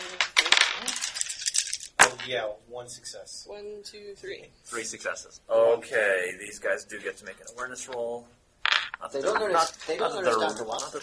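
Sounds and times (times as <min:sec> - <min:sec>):
dice rolled on a table: 0:00.0 - 0:02.4, 0:08.6 - 0:11.0
speech: 0:02.3 - 0:08.4, 0:09.0 - 0:11.0.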